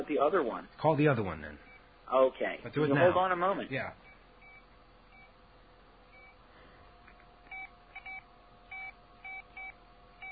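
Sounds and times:
speech: 0.1s - 4.1s
phone keypad dual-tone beeps being dialed: 7.5s - 10.3s.

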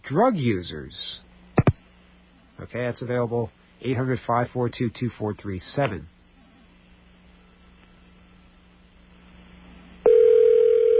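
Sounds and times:
faint low hum: 0.0s - 10.9s
speech: 0.1s - 1.2s, 2.6s - 6.1s
telephone ringing tone from a call to a health counseling line: 10.0s - 10.9s.

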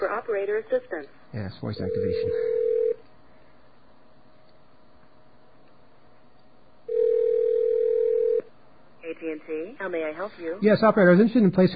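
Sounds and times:
speech: 0.1s - 2.6s, 9.2s - 11.7s
telephone dial tone: 1.9s - 3.0s, 6.9s - 8.5s.

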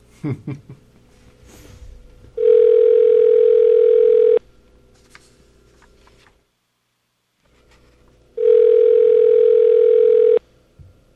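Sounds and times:
telephone line ringing tone of an outgoing call: 2.4s - 4.4s, 8.4s - 10.4s.

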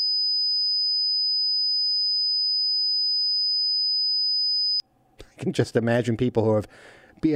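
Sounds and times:
5000 hertz high-pitched test tone: 0.0s - 4.8s
speech: 5.4s - 7.3s.

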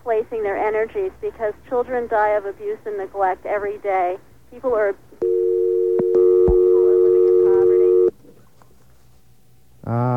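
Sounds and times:
speech: 0.4s - 5.4s, 9.9s - 10.1s
telephone dial tone after a call drops: 5.2s - 8.1s.

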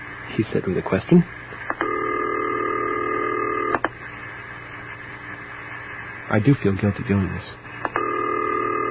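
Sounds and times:
speech: 0.3s - 1.4s, 6.3s - 7.7s
telephone ringback tone on outgoing call: 1.8s - 3.8s, 8.0s - 8.8s.

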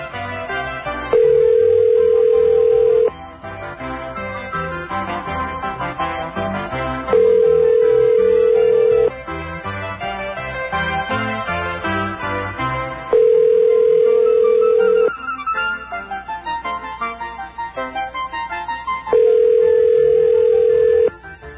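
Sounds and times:
continuous music: 0.0s - 21.5s
electronic ring tones of a phone call to a supermarket: 1.1s - 3.1s, 7.1s - 9.1s, 13.1s - 15.1s, 19.1s - 21.2s.

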